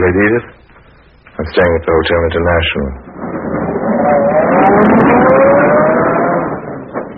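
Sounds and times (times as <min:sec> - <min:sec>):
speech: 0:00.0 - 0:00.6, 0:01.4 - 0:05.5
luxurious limousine engine rumbling and pulling away: 0:03.1 - 0:07.1.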